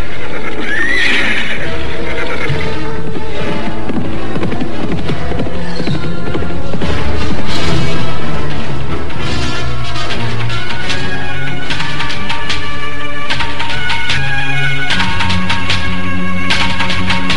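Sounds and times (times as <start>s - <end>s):
white horse neighing: 0.0s - 3.9s
white horse hooves clopping: 0.0s - 17.3s.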